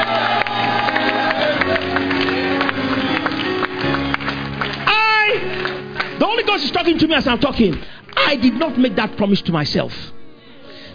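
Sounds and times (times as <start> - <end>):
people whooping: 0.0 - 4.2
large audience clapping and cheering as a clap offering to the Lord: 0.0 - 8.5
speech: 6.6 - 10.2.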